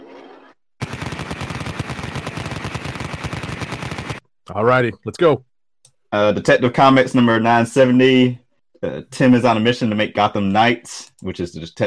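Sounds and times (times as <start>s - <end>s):
rapid machine-gun shots sound effect: 0.8s - 4.3s
speech: 4.5s - 5.5s, 6.1s - 11.8s.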